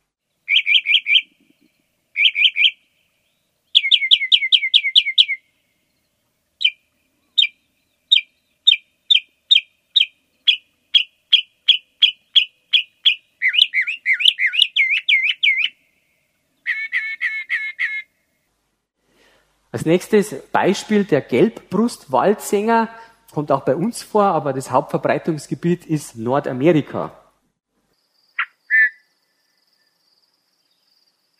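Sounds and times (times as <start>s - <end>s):
northern mockingbird singing: 0.4s - 5.4s, 6.6s - 15.8s, 16.6s - 18.1s, 28.3s - 29.8s, 30.7s - 31.3s
speech: 19.8s - 27.2s.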